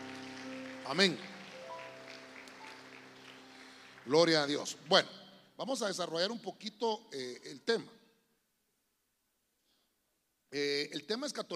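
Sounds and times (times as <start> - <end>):
audience clapping hands loudly: 0.0 - 5.1
speech: 0.9 - 1.3, 4.1 - 8.0, 10.5 - 11.5.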